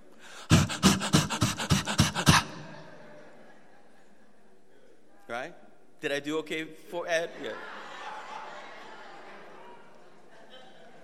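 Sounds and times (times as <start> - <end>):
person imitating dog panting with breathy huffs: 0.3 - 2.9
speech: 6.0 - 7.8.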